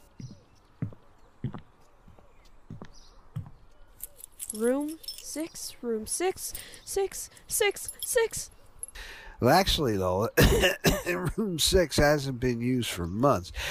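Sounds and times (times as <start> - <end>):
room keys jangling and clinking: 3.9 - 9.0
speech: 4.5 - 13.7.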